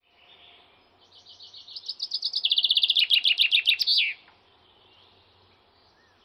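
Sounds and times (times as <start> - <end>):
bird song trill: 0.0 - 6.2.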